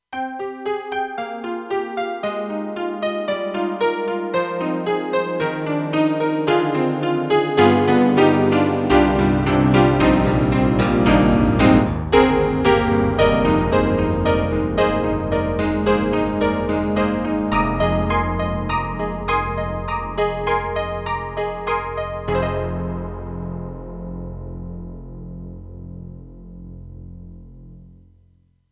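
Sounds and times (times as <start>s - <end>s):
honky-tonk piano on Roland JV-2080: 0.2s - 27.9s.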